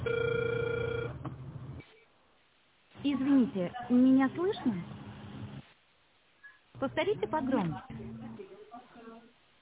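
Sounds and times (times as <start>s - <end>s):
telephone ringback tone while calling: 0.0s - 1.2s
faint low hiss: 0.0s - 9.6s
speech: 3.1s - 5.0s, 6.8s - 8.2s.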